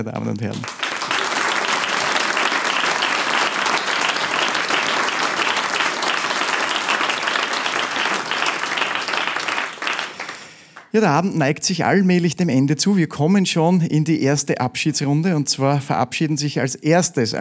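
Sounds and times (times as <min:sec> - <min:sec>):
speech: 0:00.0 - 0:00.8, 0:10.9 - 0:17.4
large audience applauding: 0:00.0 - 0:10.9.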